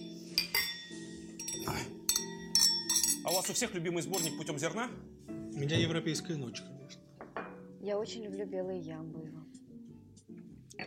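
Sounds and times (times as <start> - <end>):
glasses clinking together in a toast: 0.0 - 4.8, 7.2 - 7.6
speech: 3.3 - 6.8, 7.8 - 9.6.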